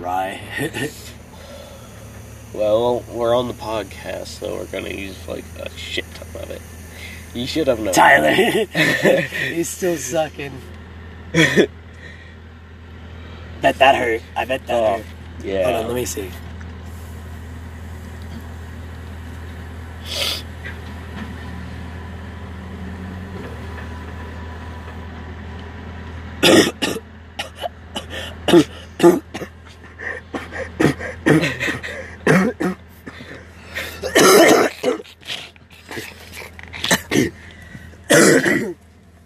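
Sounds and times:
speech: 0:00.2 - 0:01.1, 0:02.5 - 0:11.8, 0:13.6 - 0:16.4, 0:28.5 - 0:29.2
laughter: 0:00.5 - 0:01.1, 0:07.9 - 0:09.7, 0:11.4 - 0:11.7, 0:29.5 - 0:37.4
gasping breaths: 0:01.1 - 0:02.2, 0:28.1 - 0:29.0, 0:29.8 - 0:32.3, 0:33.0 - 0:38.1
person coughing: 0:26.4 - 0:37.4, 0:38.1 - 0:38.8
throat clearing: 0:26.4 - 0:37.4, 0:38.1 - 0:38.8.

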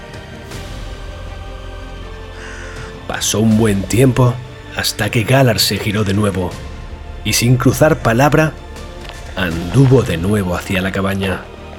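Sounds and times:
crows cawing: 0:02.3 - 0:03.0
speech: 0:03.1 - 0:08.6, 0:09.4 - 0:11.5.

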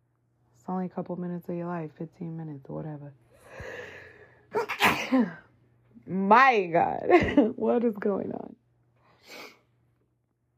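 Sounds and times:
faint steady electrical hum: 0:00.0 - 0:10.5
speech: 0:00.7 - 0:03.2, 0:05.1 - 0:05.5, 0:06.1 - 0:08.5
person sneezing: 0:04.5 - 0:05.4.

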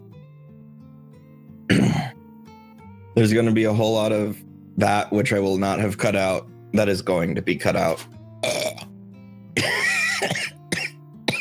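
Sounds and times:
person coughing: 0:01.7 - 0:02.2, 0:09.6 - 0:11.4
speech: 0:03.2 - 0:08.2.

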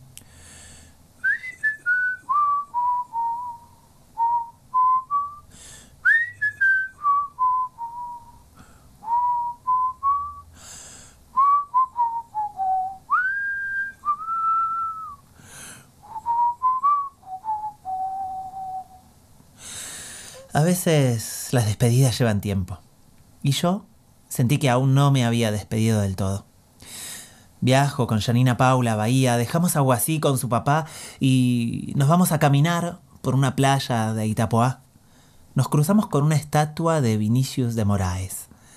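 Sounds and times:
breaths between whistled phrases: 0:00.2 - 0:01.0, 0:05.5 - 0:06.1, 0:08.5 - 0:09.0, 0:10.5 - 0:11.3, 0:15.3 - 0:16.0, 0:19.5 - 0:20.5, 0:26.8 - 0:27.6, 0:30.9 - 0:31.2, 0:35.0 - 0:35.6, 0:38.5 - 0:38.7
person whistling a slow melody: 0:01.2 - 0:08.4, 0:09.0 - 0:10.6, 0:11.4 - 0:15.2, 0:16.0 - 0:19.0
speech: 0:20.6 - 0:22.8, 0:23.4 - 0:26.5, 0:27.6 - 0:34.8, 0:35.6 - 0:38.4.

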